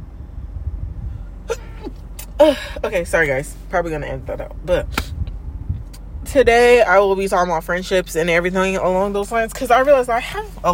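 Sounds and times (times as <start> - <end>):
car interior engine hum: 0.0 - 10.7
person sneezing: 1.5 - 2.8
speech: 2.4 - 5.2, 6.3 - 10.7.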